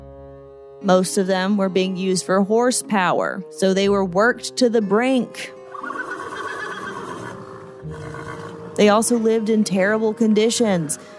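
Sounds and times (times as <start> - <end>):
speech: 0.8 - 6.0, 8.8 - 11.1
horse neighing with a long quavering whinny: 5.7 - 9.0.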